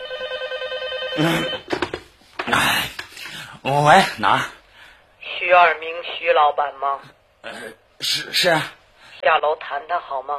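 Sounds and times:
telephone ringing with a trilling electronic pulse: 0:00.0 - 0:02.2
speech: 0:01.2 - 0:01.6, 0:03.6 - 0:04.6, 0:05.5 - 0:10.3
rustling and clattering noise: 0:01.6 - 0:03.4.

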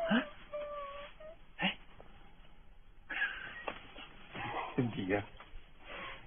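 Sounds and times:
person crying and whimpering: 0:00.0 - 0:01.8
speech: 0:04.9 - 0:05.4.

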